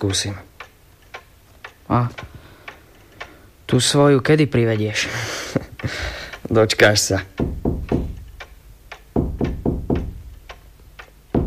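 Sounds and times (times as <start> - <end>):
speech: 0.0 - 0.5, 1.9 - 2.4, 3.7 - 7.6
hard hollow knocks of walking cane on wall: 7.4 - 8.4, 9.1 - 10.4.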